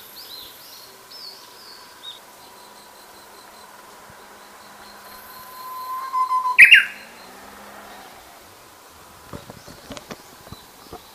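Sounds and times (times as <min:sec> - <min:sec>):
Japanese bush warbler singing: 0:00.1 - 0:07.6.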